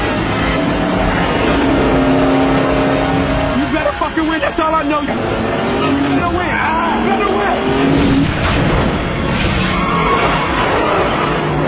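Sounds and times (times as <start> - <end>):
car engine revving and accelerating: 0.0 - 11.6.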